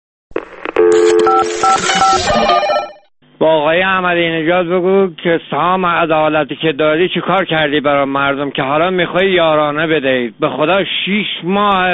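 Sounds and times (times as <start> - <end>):
electronic telephone tones from a radio station's listener answering machine: 0.7 - 3.0
speech: 0.9 - 11.9.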